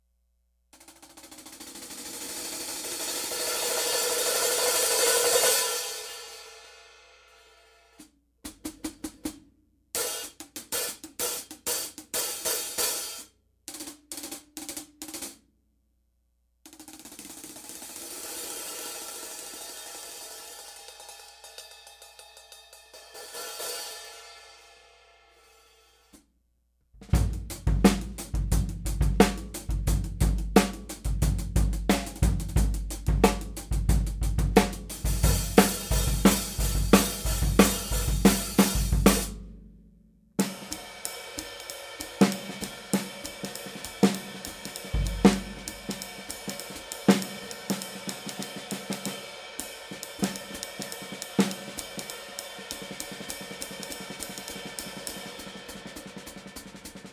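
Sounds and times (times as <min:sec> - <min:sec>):
Sabian cymbal: 0:01.5 - 0:08.0, 0:17.4 - 0:26.2, 0:27.2 - 0:39.5, 0:40.4 - 0:57.1.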